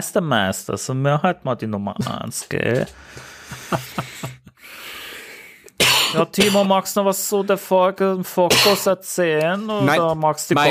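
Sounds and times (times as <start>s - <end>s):
speech: 0.0s - 4.8s, 6.1s - 10.6s
long raspy wheezing breath in: 2.9s - 5.7s
laughter: 3.3s - 4.6s
short harsh coughs in a coughing fit: 5.8s - 6.8s, 8.5s - 8.9s.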